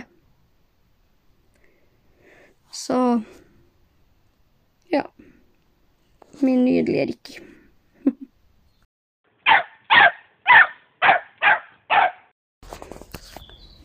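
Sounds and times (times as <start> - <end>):
speech: 2.9 - 3.4, 6.4 - 7.5
miniature American shepherd dog barking: 9.4 - 12.3.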